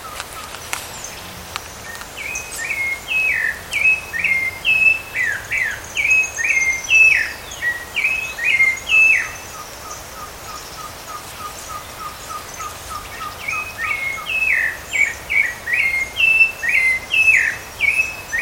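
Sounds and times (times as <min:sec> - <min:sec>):
rufous-bellied thrush song of slurred whistles in a park at Canela, Brazil: 0:01.8 - 0:10.0, 0:13.0 - 0:18.4.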